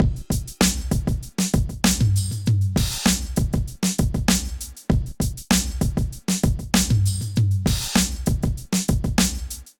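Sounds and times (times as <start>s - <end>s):
drum kit groove at 80 bpm: 0.0s - 9.7s.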